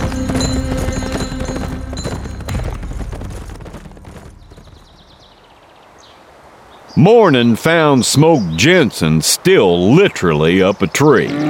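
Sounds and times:
several horses carrying riders galloping: 0:00.0 - 0:05.6
horse hooves pounding: 0:00.0 - 0:05.7
speech: 0:07.0 - 0:11.4.

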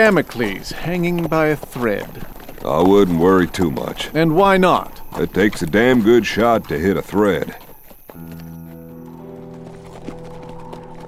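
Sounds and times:
speech: 0:00.0 - 0:08.3
horses' hooves clip-clopping at a walking pace along railroad tracks: 0:00.0 - 0:11.0
sustained humming musical backdrop: 0:08.2 - 0:11.0.

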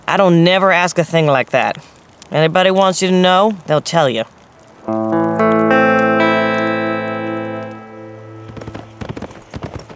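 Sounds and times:
speech: 0:00.1 - 0:05.0
musical chord: 0:04.9 - 0:09.2
running horse hooves clip-clopping: 0:08.5 - 0:09.9.

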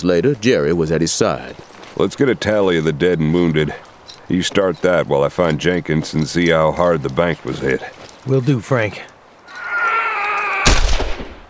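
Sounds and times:
speech: 0:00.0 - 0:09.1
gunshot shooting badly injured horses in a drama scene: 0:10.6 - 0:11.4.

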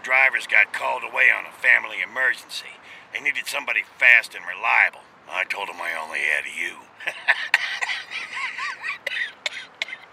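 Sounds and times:
speech: 0:00.2 - 0:08.4
person coughing with a wheezy rasp: 0:07.3 - 0:08.2, 0:08.9 - 0:10.1.

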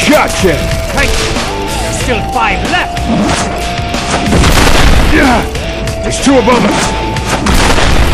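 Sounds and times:
speech: 0:00.1 - 0:01.4, 0:02.1 - 0:07.5
booming explosion from an exploding star knife: 0:04.3 - 0:05.3, 0:07.5 - 0:08.1.

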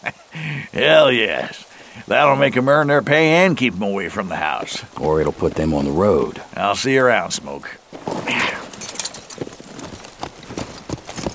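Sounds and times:
speech: 0:00.0 - 0:08.6
horse hooves clip-clopping as a rider moves off: 0:04.3 - 0:06.4, 0:07.8 - 0:11.3.

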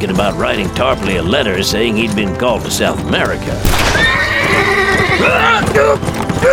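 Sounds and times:
speech: 0:00.0 - 0:06.5
galloping hooves pounding: 0:02.0 - 0:06.5
black horse whinnying loudly: 0:03.7 - 0:06.5.

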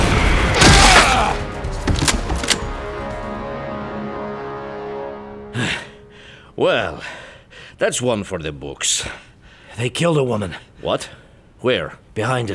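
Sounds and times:
gunshots: 0:00.0 - 0:02.8
speech: 0:06.6 - 0:07.2, 0:07.8 - 0:12.5.

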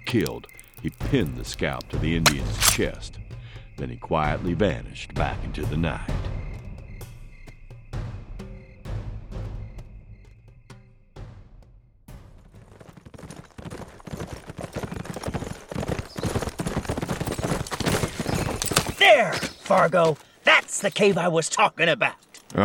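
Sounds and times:
horses walking with hooves clip-clopping: 0:00.0 - 0:02.4, 0:12.1 - 0:22.5
speech: 0:00.1 - 0:03.2, 0:03.8 - 0:06.3, 0:19.8 - 0:22.6.

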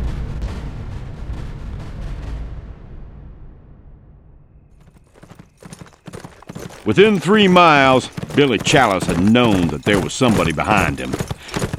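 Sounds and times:
ridden horse's hooves clip-clopping on trail: 0:04.8 - 0:11.7
speech: 0:06.8 - 0:11.3.

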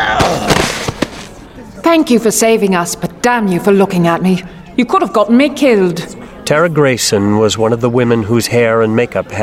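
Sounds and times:
heavy clay planter breaking over someone's head: 0:00.2 - 0:01.3
speech: 0:01.9 - 0:09.4.

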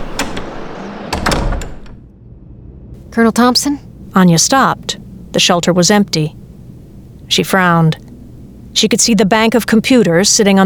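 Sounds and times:
door latch clicks and knocks at a snowbound shelter: 0:00.0 - 0:02.0
speech: 0:03.2 - 0:06.4, 0:07.3 - 0:08.0, 0:08.8 - 0:10.6.

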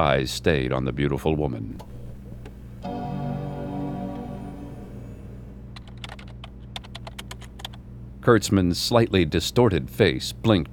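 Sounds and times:
speech: 0:00.0 - 0:02.0, 0:08.2 - 0:10.7
steady low hum: 0:01.7 - 0:06.3
brief chime-like tone: 0:02.6 - 0:05.7
typing on a laptop keyboard: 0:05.8 - 0:07.8.

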